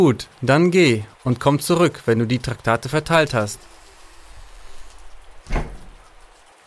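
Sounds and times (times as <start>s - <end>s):
speech: 0.0s - 3.8s
heavy rain pouring down on a street: 0.0s - 6.6s.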